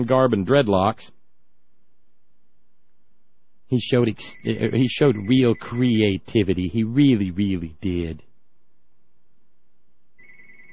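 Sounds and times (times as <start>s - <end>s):
speech: 0.0s - 1.2s, 3.7s - 8.3s
telephone ringer ringing: 10.2s - 10.7s.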